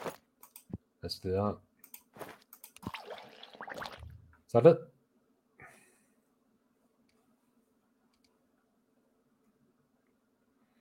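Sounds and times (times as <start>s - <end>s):
speech: 1.1s - 1.7s, 4.5s - 4.9s
water poured onto a bonsai plant: 2.8s - 4.1s.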